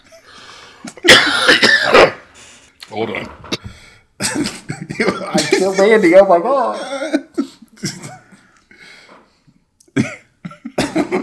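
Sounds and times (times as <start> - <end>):
man coughing hard in a raspy fit: 1.0 - 2.3, 4.2 - 5.8, 6.7 - 8.3, 10.0 - 11.2
speech: 2.9 - 3.6, 5.0 - 7.2.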